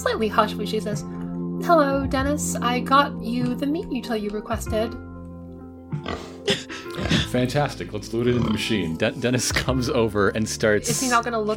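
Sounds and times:
speech: 0.0s - 5.1s, 5.9s - 6.6s, 7.3s - 11.5s
person voicing snorting grunting pig oinks: 6.0s - 7.3s
laughter: 6.5s - 7.4s.

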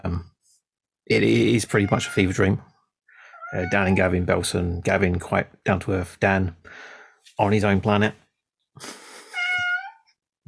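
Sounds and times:
speech: 1.1s - 2.7s, 3.5s - 8.2s, 8.8s - 9.0s
cat meowing: 1.7s - 2.4s, 3.3s - 4.0s, 9.3s - 10.1s.

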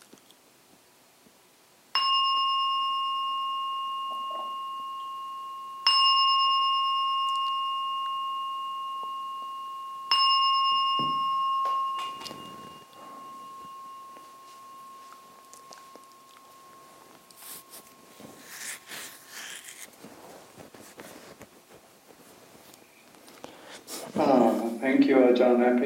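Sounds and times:
meditation bell struck: 1.9s - 19.9s
faint rustling: 11.5s - 25.0s
speech: 24.2s - 25.8s.

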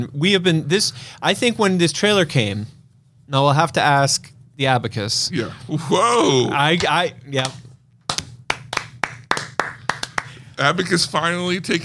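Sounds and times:
speech: 0.0s - 7.6s, 10.6s - 11.8s
sharp hand claps: 7.4s - 10.4s.

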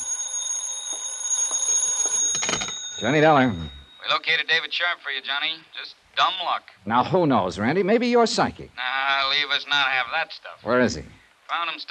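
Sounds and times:
telephone ringing with shrill bell tone: 0.0s - 4.3s
speech: 3.0s - 11.8s.

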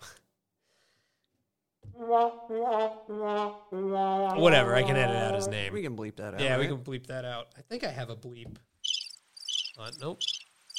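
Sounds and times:
speech: 2.0s - 8.7s, 9.8s - 10.4s
crickets chirping: 8.8s - 10.7s.

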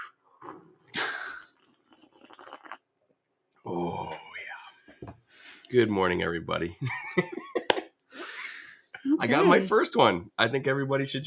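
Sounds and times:
slurping sip of hot coffee from a mug: 0.0s - 2.8s
wet swallowing and mouth sounds: 0.0s - 2.9s
speech: 3.7s - 4.2s, 5.7s - 7.5s, 9.2s - 11.2s.

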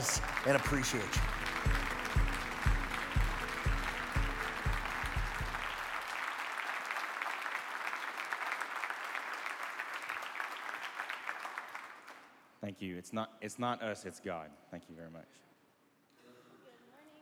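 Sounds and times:
deep rhythmic thumping beat: 0.0s - 5.8s
large audience applauding: 0.0s - 12.4s
speech: 0.1s - 1.8s, 12.8s - 15.5s.

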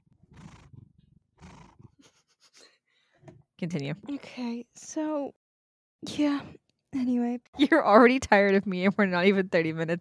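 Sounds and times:
cat breathing in rough breathy huffs: 0.2s - 3.3s
speech: 3.6s - 5.4s, 6.0s - 9.9s.

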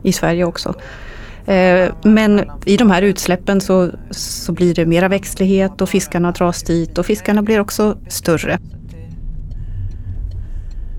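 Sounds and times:
speech: 0.0s - 8.8s
car driving along a road out into the forest: 7.2s - 10.9s.

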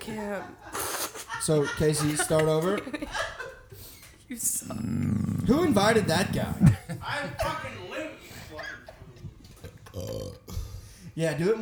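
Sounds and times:
speech: 0.1s - 0.8s, 1.4s - 3.4s, 4.3s - 8.8s, 10.0s - 10.4s, 11.2s - 11.6s
laughter: 0.2s - 4.0s, 4.7s - 10.6s
throaty noises: 4.4s - 11.4s
person burping deeply: 4.7s - 7.6s, 9.5s - 10.8s.

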